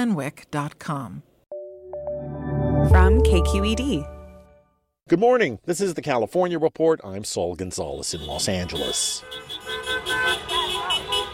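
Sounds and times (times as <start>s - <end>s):
speech: 0.0s - 1.3s, 2.8s - 4.1s, 5.1s - 9.9s
traffic noise in a downtown Los Angeles street: 7.6s - 11.3s
car horns honking as people celebrate in a downtown Los Angeles street: 8.0s - 11.3s.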